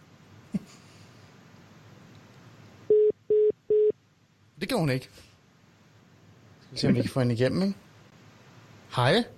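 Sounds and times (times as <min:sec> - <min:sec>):
electronic ringback tones on a phone line during an outgoing call: 0:02.9 - 0:03.9
speech: 0:04.6 - 0:05.3, 0:06.7 - 0:07.8, 0:08.9 - 0:09.3.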